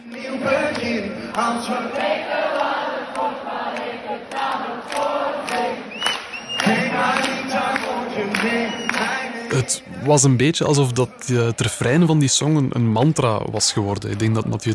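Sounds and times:
concert audience singing the chorus: 0:00.0 - 0:14.7
speech: 0:00.4 - 0:02.6, 0:09.5 - 0:14.7
arena audience whistling: 0:05.6 - 0:07.3, 0:08.2 - 0:09.5.

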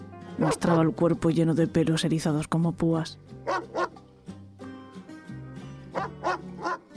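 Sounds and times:
dog barking during a fight with a cat: 0:00.4 - 0:00.9, 0:03.4 - 0:04.0, 0:05.9 - 0:06.9
speech: 0:00.4 - 0:03.8.

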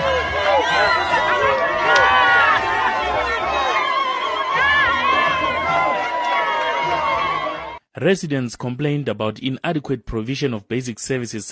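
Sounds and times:
thousands of party supporters cheering in a stadium: 0:00.0 - 0:07.8
speech: 0:08.0 - 0:11.5.

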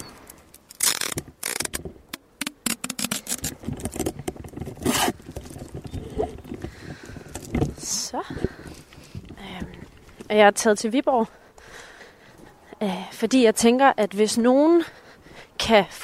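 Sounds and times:
rustling and handling sounds: 0:00.0 - 0:10.4
adhesive tape ripped off a roll to fasten a dictaphone: 0:00.6 - 0:05.2
speech: 0:10.3 - 0:11.4, 0:12.8 - 0:15.0, 0:15.7 - 0:16.0.

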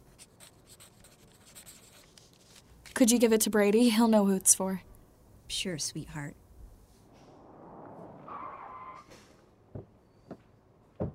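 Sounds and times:
pen scratching on paper writing down a phone number: 0:00.1 - 0:02.6
speech: 0:03.0 - 0:04.9, 0:05.6 - 0:06.4.

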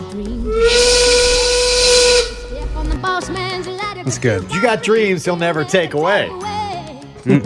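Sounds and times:
low rumble: 0:00.2 - 0:03.2
loud steam whistle blowing with rushing hiss: 0:00.5 - 0:02.9
speech: 0:04.1 - 0:06.5, 0:07.2 - 0:07.4.

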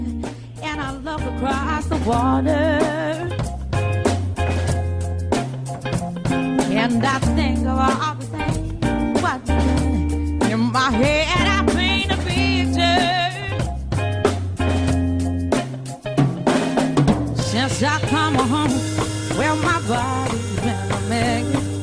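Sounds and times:
full band playing a pop song with bass drums and guitar: 0:00.0 - 0:21.8
speech: 0:01.0 - 0:02.9, 0:06.8 - 0:08.2
male voice singing a pop song cover: 0:17.4 - 0:21.8.

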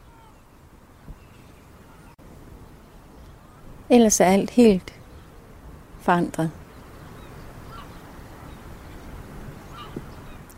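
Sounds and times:
steady wind in a harbour: 0:00.0 - 0:10.5
speech: 0:03.9 - 0:05.0, 0:06.0 - 0:06.6
seagulls screeching in a former fishing harbour on the Limfjord: 0:09.7 - 0:10.4.

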